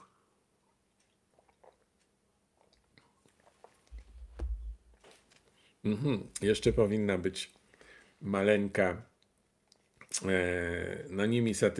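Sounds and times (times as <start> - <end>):
person sipping water from a mug: 0.7 - 4.1
speech: 5.8 - 7.6, 8.2 - 9.1, 10.1 - 11.7.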